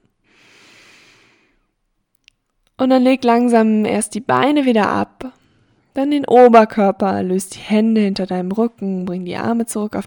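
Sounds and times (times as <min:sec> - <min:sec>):
deep breath in during a floor stretching exercise: 0:00.2 - 0:01.8, 0:05.4 - 0:05.9
speech: 0:02.8 - 0:05.4, 0:06.0 - 0:10.0.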